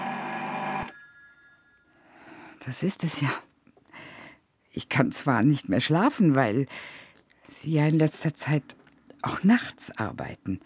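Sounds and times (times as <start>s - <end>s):
telephone bell ringing: 0.0s - 2.2s
faint quiet background: 1.1s - 10.6s
speech: 2.6s - 3.5s, 4.8s - 10.6s.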